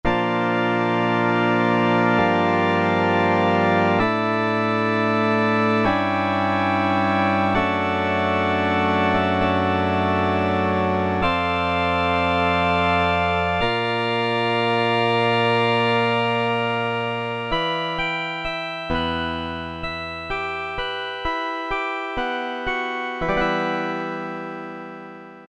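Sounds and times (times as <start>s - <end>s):
percussive pipe organ sound on Korg Poly-800 synthesizer: 0.0s - 25.4s.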